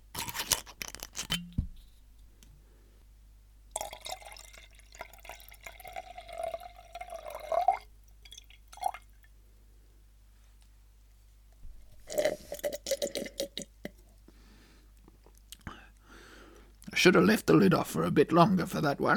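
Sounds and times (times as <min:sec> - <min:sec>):
water being poured into a glass: 0:03.7 - 0:09.2, 0:12.1 - 0:13.7
water dripping: 0:03.7 - 0:09.3
speech: 0:17.0 - 0:19.1.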